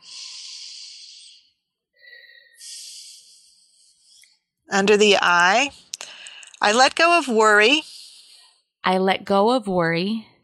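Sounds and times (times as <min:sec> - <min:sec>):
deep breathing during a guided affirmation meditation: 0:00.0 - 0:04.3, 0:06.0 - 0:06.6
speech: 0:04.7 - 0:05.8, 0:06.6 - 0:07.9, 0:08.8 - 0:10.3.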